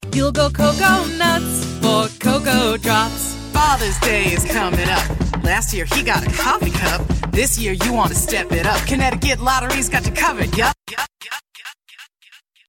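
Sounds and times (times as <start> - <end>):
person rapping: 0.1 - 12.4
jingle singing: 0.6 - 8.6
spoken word advertisement: 2.3 - 8.9.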